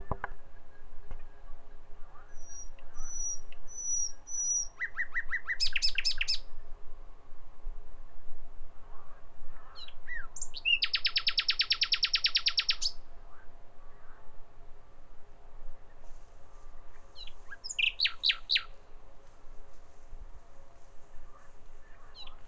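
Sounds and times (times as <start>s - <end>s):
common nightingale song with thin high whistles, rattling phrase and loud fast trill: 2.3s - 6.5s, 9.8s - 13.0s, 17.2s - 18.7s.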